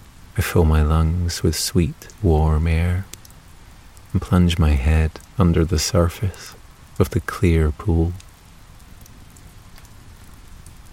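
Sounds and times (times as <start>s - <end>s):
rain pattering onto the surface of a clear pool: 0.0s - 10.9s
speech: 0.4s - 3.1s, 4.1s - 8.2s.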